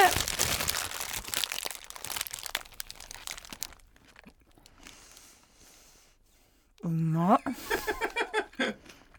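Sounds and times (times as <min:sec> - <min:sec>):
croquette burger wrapper crinkling: 0:00.0 - 0:05.1
laughter: 0:07.5 - 0:08.8.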